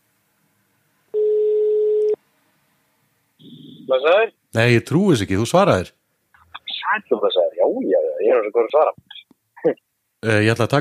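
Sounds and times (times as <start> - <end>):
telephone ringback tone while calling someone: 1.2 - 2.2
speech: 3.9 - 6.0, 6.9 - 10.7.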